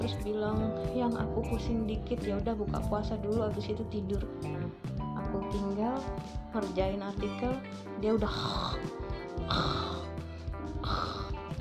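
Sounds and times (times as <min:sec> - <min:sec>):
speech: 0:00.1 - 0:10.0
loud rasping snores with a throaty rattle: 0:08.3 - 0:10.2, 0:10.8 - 0:11.5.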